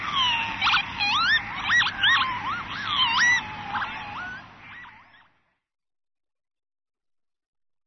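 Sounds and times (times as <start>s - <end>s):
Northern lapwing calling with wheezy whistles: 0.0s - 5.4s.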